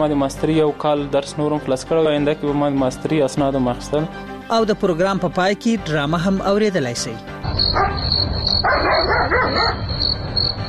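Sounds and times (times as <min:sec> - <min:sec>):
speech: 0:00.0 - 0:08.9, 0:09.5 - 0:10.0
dog barking: 0:07.7 - 0:09.9.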